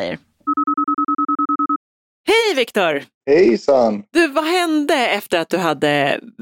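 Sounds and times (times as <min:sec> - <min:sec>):
speech: 0:00.0 - 0:00.3, 0:02.3 - 0:06.4
outgoing phone call ringing tone beeps: 0:00.5 - 0:01.8.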